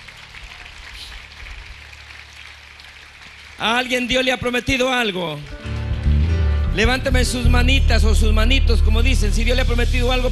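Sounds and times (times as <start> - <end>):
audience applauding: 0.0 - 6.4
speech: 3.6 - 5.6, 6.8 - 10.2.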